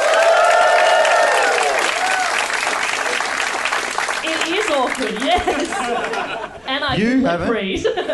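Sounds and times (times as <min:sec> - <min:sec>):
cheering: 0:00.0 - 0:03.8
live audience applause: 0:00.0 - 0:06.4
speech: 0:04.9 - 0:08.1
laughter: 0:05.2 - 0:06.7, 0:07.8 - 0:08.1.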